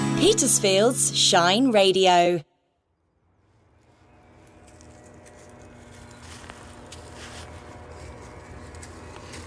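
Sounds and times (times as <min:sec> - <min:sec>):
speech: 0:00.2 - 0:02.5
shuffling and crunching footsteps through dry dead leaves at the Millennium Field: 0:03.5 - 0:09.4.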